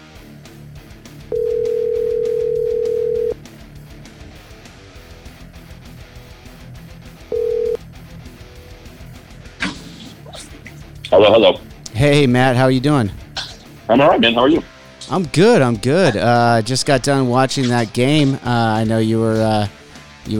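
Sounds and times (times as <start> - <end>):
long steady electronic phone ring tone: 1.3 - 3.4, 7.3 - 7.8
speech: 11.2 - 13.2, 13.9 - 20.3.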